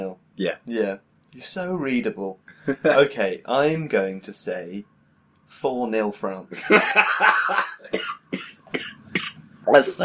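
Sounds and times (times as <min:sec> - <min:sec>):
speech: 0:00.1 - 0:04.9, 0:05.5 - 0:08.8, 0:09.7 - 0:10.0
laughter: 0:06.6 - 0:07.9
rough raspy coughing fit: 0:07.8 - 0:09.4.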